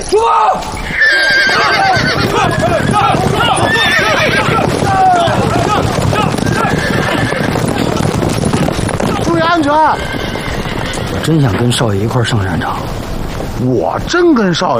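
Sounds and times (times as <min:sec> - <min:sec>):
hooves clip-clopping: 0:00.0 - 0:14.7
horse whinnying in loud wavering cries: 0:00.8 - 0:11.8
speech: 0:11.3 - 0:13.0, 0:13.6 - 0:14.7.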